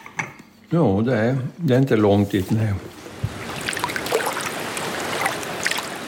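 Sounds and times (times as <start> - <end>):
speech: 0.7 - 3.0
steady rushing of river water with bubbling gurgling splashes: 3.2 - 6.0.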